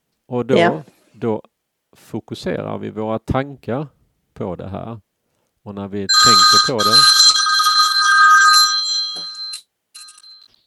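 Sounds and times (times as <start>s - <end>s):
speech: 0.3s - 7.2s
telephone ringing with a shrill electronic trill: 6.1s - 10.5s.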